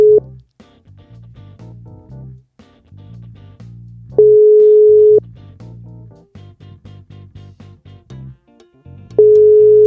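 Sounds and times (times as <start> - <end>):
telephone ringback tone of an unanswered call: 0.0 - 0.2, 4.2 - 5.2, 9.2 - 9.8
soft music: 0.0 - 9.8.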